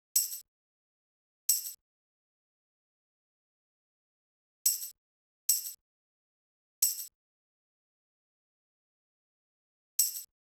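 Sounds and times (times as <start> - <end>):
hip hop percussion: 0.2 - 0.4, 4.7 - 4.9, 5.5 - 5.8, 6.8 - 7.1, 10.0 - 10.3.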